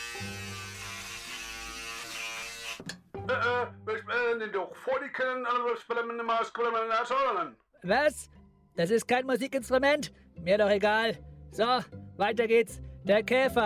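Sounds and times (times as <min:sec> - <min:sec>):
electric razor buzzing as a stand-in for a hornet: 0:00.0 - 0:02.9
speech: 0:04.4 - 0:13.6.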